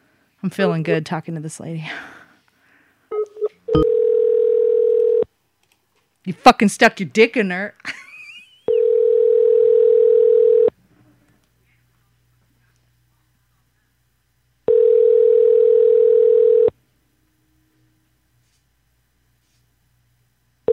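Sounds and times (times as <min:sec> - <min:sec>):
speech: 0:00.4 - 0:02.2, 0:06.3 - 0:08.0
outgoing call ringback tone: 0:03.1 - 0:05.2, 0:08.7 - 0:10.7, 0:14.7 - 0:16.7.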